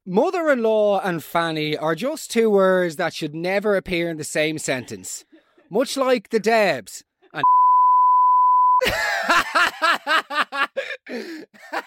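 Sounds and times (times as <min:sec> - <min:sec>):
speech: 0:00.1 - 0:07.6, 0:08.8 - 0:11.8
steady sine-tone censor beep: 0:07.4 - 0:08.8
chuckling laughter: 0:08.8 - 0:11.8.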